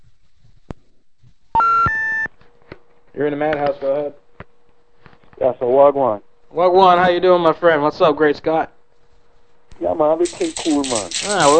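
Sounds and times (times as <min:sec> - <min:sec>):
electronic beeping of an incoming phone call: 0:01.6 - 0:02.3
speech: 0:03.2 - 0:04.2, 0:05.4 - 0:08.8, 0:09.8 - 0:11.5.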